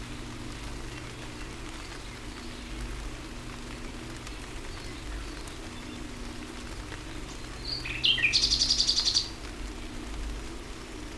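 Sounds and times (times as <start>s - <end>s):
quiet hiss: 0.0s - 11.1s
common nightingale singing: 7.6s - 9.4s.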